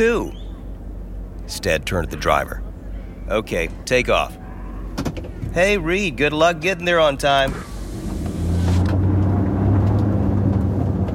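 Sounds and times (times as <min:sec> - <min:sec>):
speech: 0:00.0 - 0:00.4, 0:01.5 - 0:02.6, 0:03.3 - 0:04.4, 0:05.5 - 0:07.7
car engine rumbling as the car drives away: 0:07.5 - 0:11.1.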